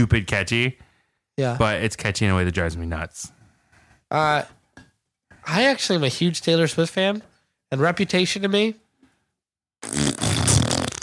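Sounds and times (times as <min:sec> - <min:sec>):
speech: 0:00.0 - 0:00.8, 0:01.4 - 0:03.4, 0:04.1 - 0:04.6, 0:05.4 - 0:08.8, 0:09.8 - 0:10.4
buzzy fart noise blown with the mouth as a raspberry: 0:09.8 - 0:11.0.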